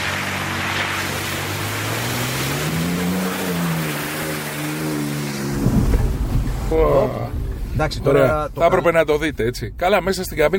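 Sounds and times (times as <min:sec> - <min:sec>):
water spray rushing as a car speeds through water: 0:00.0 - 0:06.8
car splashing through water: 0:00.0 - 0:07.7
car engine droning: 0:00.0 - 0:10.5
speech: 0:06.7 - 0:10.5.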